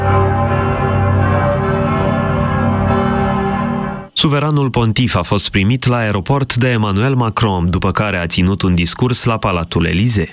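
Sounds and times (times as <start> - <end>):
church bells ringing in Paris: 0.0 - 4.1
speech: 4.2 - 10.3.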